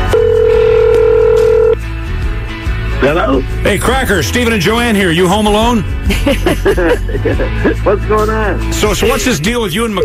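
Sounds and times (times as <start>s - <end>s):
steady electronic telephone line tone: 0.1s - 1.8s
speech: 3.0s - 10.0s
laughter: 6.0s - 7.9s.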